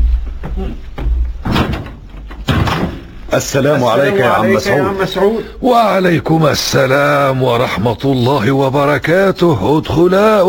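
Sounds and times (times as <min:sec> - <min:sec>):
door handled with solid knocks and bumps: 0:00.3 - 0:03.3
speech: 0:00.6 - 0:00.9, 0:03.4 - 0:10.4.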